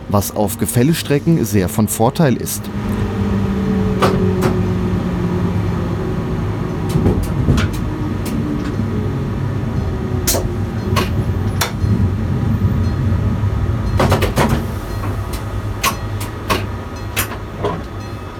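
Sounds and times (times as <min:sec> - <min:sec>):
rumble of a moving train heard from inside its driving trailer car: 0:00.0 - 0:18.3
speech: 0:00.1 - 0:03.0
electric brake contactors engaging in a train driving trailer car: 0:03.7 - 0:05.0, 0:06.5 - 0:09.1, 0:09.7 - 0:12.1, 0:13.9 - 0:18.3.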